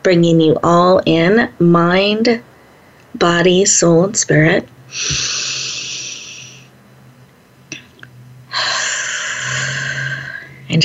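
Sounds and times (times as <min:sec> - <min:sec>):
speech: 0:00.0 - 0:02.5, 0:03.1 - 0:05.6
deep breath drawn in through the nose: 0:04.9 - 0:06.7, 0:08.5 - 0:10.6.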